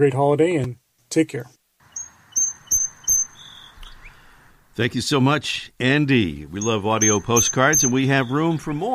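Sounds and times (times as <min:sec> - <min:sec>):
speech: 0:00.0 - 0:01.6, 0:04.8 - 0:08.9
bird calling at a craft fair: 0:01.8 - 0:08.9.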